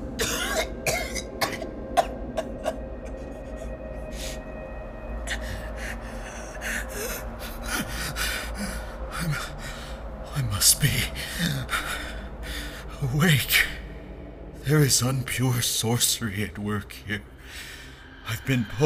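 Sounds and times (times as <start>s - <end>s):
low hum: 0.0s - 18.8s
raspy coughing: 0.2s - 3.8s
speech: 14.7s - 17.3s, 18.4s - 18.8s.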